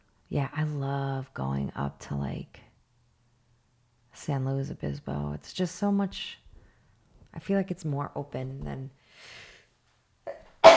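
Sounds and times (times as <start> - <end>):
speech: 0.3 - 2.7, 4.2 - 6.4, 7.4 - 9.4
person sneezing: 10.3 - 10.7.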